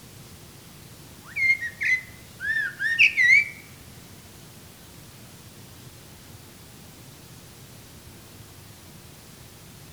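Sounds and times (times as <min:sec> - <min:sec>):
common blackbird Turdus merula giving short whistled notes with faint harmonics: 0:01.3 - 0:03.6.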